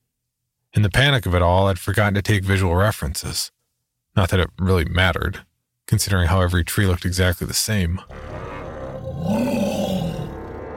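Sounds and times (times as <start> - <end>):
speech: 0.8 - 3.6, 4.2 - 8.4
black wolf growling among forest trees: 8.1 - 10.7.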